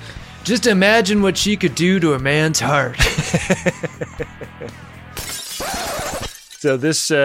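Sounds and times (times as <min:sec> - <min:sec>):
speech: 0:00.5 - 0:04.9, 0:06.6 - 0:07.2
laughter: 0:03.0 - 0:04.8
glass window shattering: 0:05.2 - 0:07.0.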